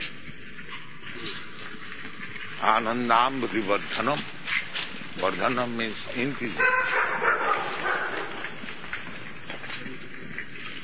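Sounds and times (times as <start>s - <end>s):
speech: 2.6s - 4.4s, 5.2s - 7.5s
dog barking: 6.6s - 8.6s.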